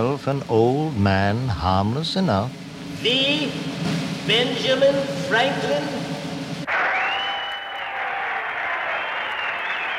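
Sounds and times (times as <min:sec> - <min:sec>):
speech: 0:00.0 - 0:06.0
crowd cheering: 0:06.6 - 0:09.9
applause: 0:06.7 - 0:09.9
high whoops and shouts: 0:06.7 - 0:09.9.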